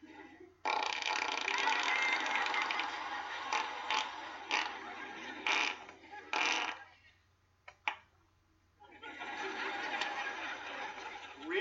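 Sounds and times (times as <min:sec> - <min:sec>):
person imitating a fart: 0:00.6 - 0:02.8, 0:03.5 - 0:04.8, 0:05.4 - 0:06.9
laughter: 0:01.5 - 0:06.6, 0:08.8 - 0:11.5.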